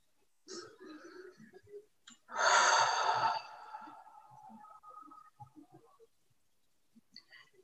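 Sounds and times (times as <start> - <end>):
faint vocal sounds: 0.5 - 6.2
deep loud breath out during a guided breathing exercise: 2.3 - 4.7.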